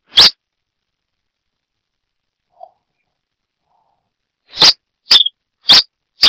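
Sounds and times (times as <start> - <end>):
Coryphospingus cucullatus red-crested finch call notes: 4.6 - 6.2.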